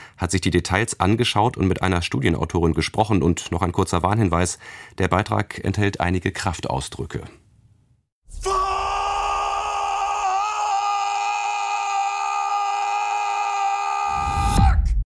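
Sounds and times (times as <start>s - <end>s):
speech: 0.2s - 7.4s
man screaming loudly: 8.3s - 14.9s.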